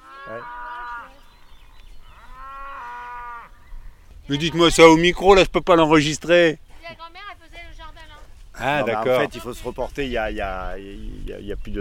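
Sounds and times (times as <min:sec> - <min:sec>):
cow mooing: 0:00.0 - 0:01.2, 0:02.1 - 0:03.6
speech: 0:00.3 - 0:00.6, 0:04.3 - 0:07.0, 0:08.6 - 0:11.8.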